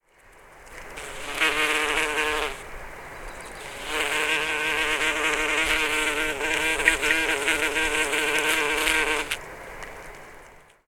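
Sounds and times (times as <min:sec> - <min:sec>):
bumblebee buzzing: 0:01.0 - 0:02.6, 0:03.6 - 0:09.4.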